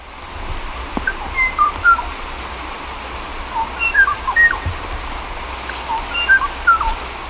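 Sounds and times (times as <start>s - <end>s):
steady background hiss: 0.0s - 7.2s
Kauai ʻōʻō song: 1.0s - 2.1s, 3.6s - 4.7s, 5.7s - 7.0s.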